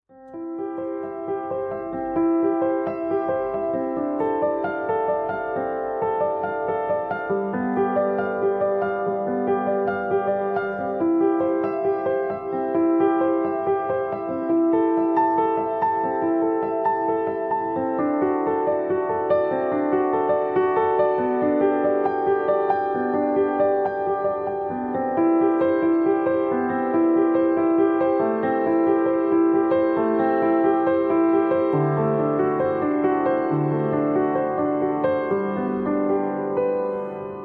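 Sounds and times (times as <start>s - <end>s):
piano: 0.1s - 37.4s.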